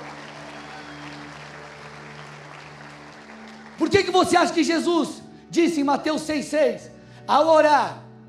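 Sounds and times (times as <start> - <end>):
audience applauding: 0.0 - 4.8
speech: 3.8 - 8.0.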